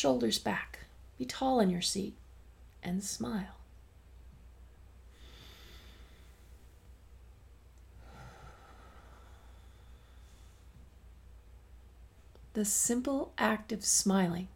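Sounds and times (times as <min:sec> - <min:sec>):
speech: 0:00.0 - 0:02.2, 0:02.8 - 0:03.6, 0:12.6 - 0:14.5
faint steady hum: 0:00.0 - 0:14.5
slow deep breath in through the nose and out: 0:05.1 - 0:06.8, 0:08.0 - 0:10.9.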